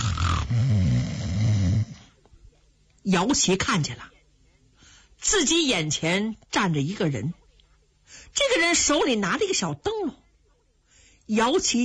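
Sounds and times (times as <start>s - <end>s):
man imitating snoring: 0.0s - 2.1s
speech: 0.5s - 1.2s, 3.1s - 4.2s, 5.2s - 7.4s, 8.1s - 10.2s, 11.3s - 11.8s.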